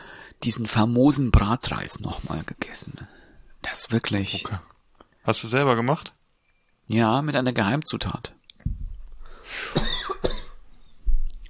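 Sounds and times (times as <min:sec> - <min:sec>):
speech: 0:00.4 - 0:06.2, 0:06.9 - 0:08.4
person coughing: 0:09.6 - 0:10.6.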